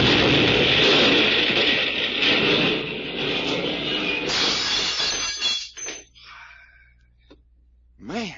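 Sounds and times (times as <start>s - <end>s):
car exploding: 0.0s - 5.4s
debris crashing: 0.0s - 5.8s
glass shattering: 0.0s - 6.2s.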